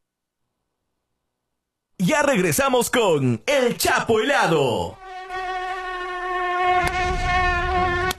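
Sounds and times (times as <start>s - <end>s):
speech: 2.1s - 5.0s
mosquito buzzing: 4.9s - 8.1s.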